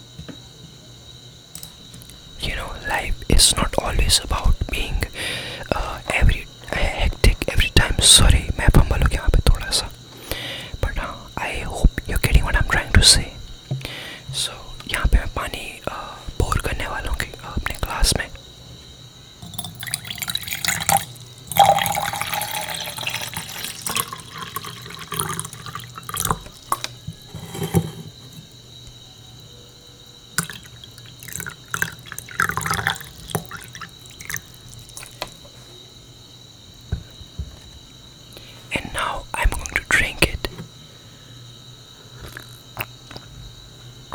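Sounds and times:
small liquid trickles: 0:01.3 - 0:35.9
sipping and swallowing water: 0:01.6 - 0:18.5, 0:19.4 - 0:29.0, 0:30.4 - 0:35.7, 0:38.3 - 0:40.7, 0:42.0 - 0:43.4
person whispering: 0:02.4 - 0:18.4, 0:38.4 - 0:40.6
speech: 0:02.9 - 0:06.8.

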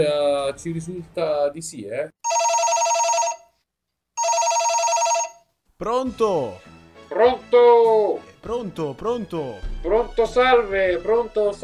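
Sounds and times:
speech: 0:00.0 - 0:02.4, 0:05.8 - 0:11.6
telephone ringing with an incoming call: 0:02.2 - 0:03.6, 0:04.2 - 0:05.5.

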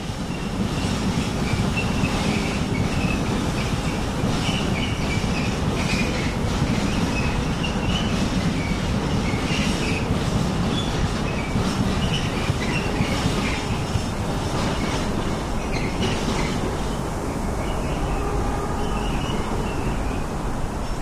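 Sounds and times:
train rumbling past: 0:00.0 - 0:21.0
train wheels clickety-clack on the rails: 0:00.0 - 0:21.0.

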